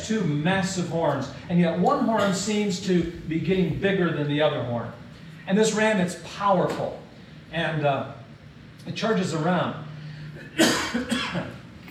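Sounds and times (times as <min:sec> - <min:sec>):
speech: 0:00.1 - 0:08.2, 0:08.8 - 0:09.8, 0:10.6 - 0:11.6
person coughing: 0:02.2 - 0:02.5, 0:10.4 - 0:11.6.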